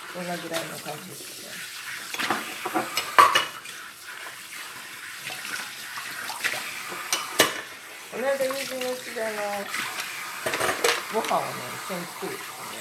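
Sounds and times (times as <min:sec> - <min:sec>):
water running from a kitchen tap: 0:00.0 - 0:12.7
speech: 0:00.2 - 0:02.9, 0:08.2 - 0:12.7
dishes and utensils clinking and clattering: 0:02.1 - 0:03.7, 0:06.5 - 0:07.7, 0:09.7 - 0:11.5.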